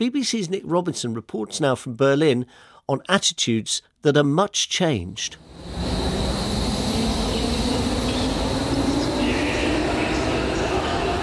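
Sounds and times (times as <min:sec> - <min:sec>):
speech: 0:00.0 - 0:06.2
faint high-pitched metallic whine in a train station: 0:05.3 - 0:11.2
low rumble of rail traffic in a train station: 0:05.4 - 0:11.2
indistinct voices murmuring in a train station: 0:05.7 - 0:11.2.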